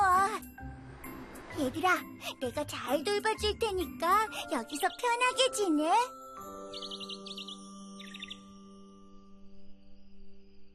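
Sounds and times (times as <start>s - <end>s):
speech: 1.6s - 7.1s
mother bird chirping in her nest: 6.6s - 8.6s.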